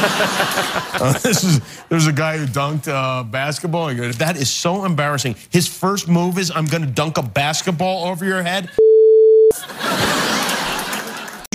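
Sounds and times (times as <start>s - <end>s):
laughter: 0.0s - 2.5s, 9.6s - 11.5s
speech: 0.0s - 8.8s, 9.6s - 10.6s
short steady electronic beep: 8.8s - 9.5s.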